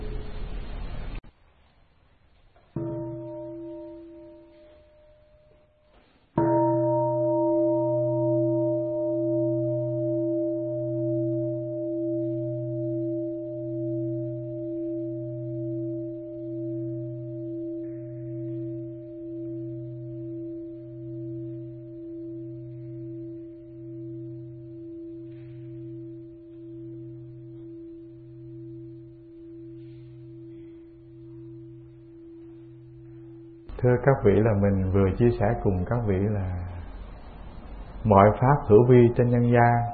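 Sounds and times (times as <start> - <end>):
large Buddhist temple bell struck and ringing: 2.8 - 5.8, 6.4 - 39.9
speech: 33.8 - 36.6, 38.1 - 39.9.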